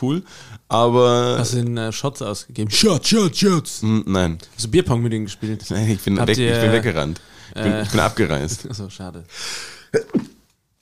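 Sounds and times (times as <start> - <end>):
speech: 0.0 - 10.2
laughter: 7.6 - 8.9
suppressed sneeze: 10.0 - 10.4.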